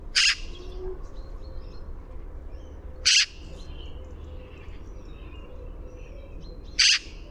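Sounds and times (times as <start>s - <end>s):
Eurasian magpie Pica pica giving harsh noisy calls: 0.1s - 0.6s, 3.0s - 3.4s, 6.8s - 7.2s.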